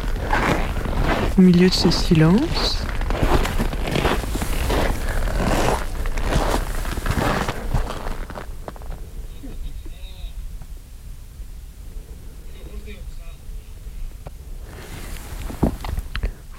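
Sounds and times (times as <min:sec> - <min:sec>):
rustling steps: 0:00.0 - 0:09.3, 0:14.2 - 0:16.2
crunching footsteps of a person approaching a yurt in very cold weather: 0:00.0 - 0:09.9, 0:14.2 - 0:16.3
speech: 0:01.4 - 0:02.9.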